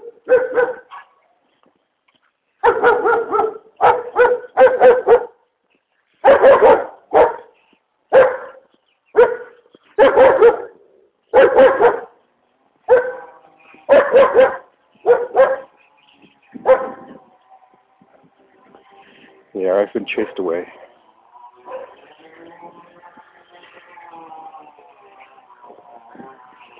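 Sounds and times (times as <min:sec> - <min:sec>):
dogs barking: 0:00.0 - 0:01.3, 0:02.6 - 0:05.4, 0:06.2 - 0:15.8, 0:16.5 - 0:17.3, 0:21.5 - 0:22.2
speech: 0:20.0 - 0:20.8.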